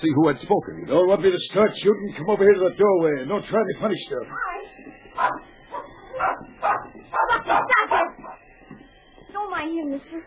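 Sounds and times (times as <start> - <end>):
speech: 0.0 - 5.5, 9.6 - 10.2
small dog barking: 5.2 - 8.4.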